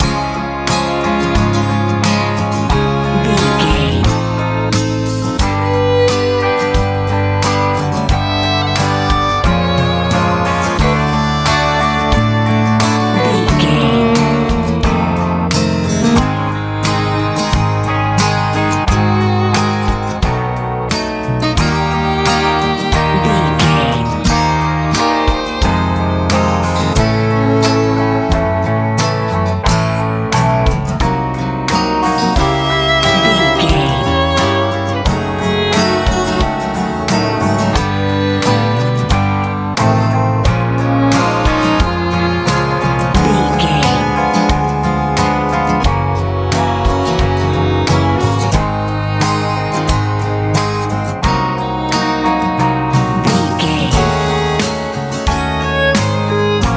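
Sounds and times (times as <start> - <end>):
pop rock music: 0.0 - 56.7.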